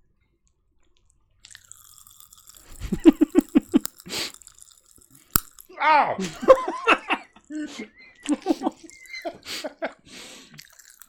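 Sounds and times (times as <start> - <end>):
popping candy crackling in a mouth: 0.9 - 11.0
laughter: 2.8 - 3.8, 6.0 - 10.1
hissing breath: 3.9 - 4.8, 7.5 - 11.0
speech: 5.8 - 8.8.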